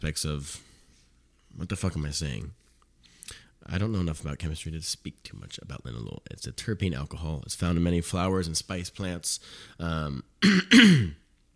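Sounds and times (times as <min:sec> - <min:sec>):
speech: 0:00.0 - 0:00.7, 0:01.6 - 0:02.6, 0:03.3 - 0:11.2
throat clearing: 0:10.4 - 0:11.2.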